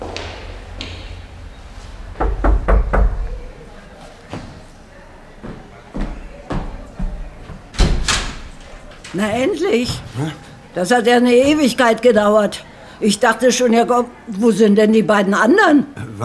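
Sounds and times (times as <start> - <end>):
door handling bumps: 2.0 - 3.6, 6.5 - 10.1
knocking on a wooden door: 2.2 - 3.5
speech: 9.2 - 16.2.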